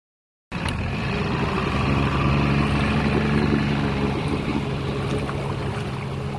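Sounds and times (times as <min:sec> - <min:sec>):
large motorboat engine droning along a river: 0:00.5 - 0:06.3
water wash: 0:00.5 - 0:06.3
wind: 0:00.5 - 0:06.3.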